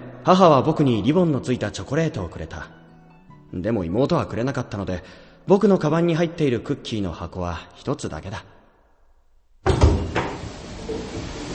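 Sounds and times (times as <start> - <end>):
speech: 0.2 - 2.8, 3.5 - 8.5
elevator door opening: 9.6 - 11.5.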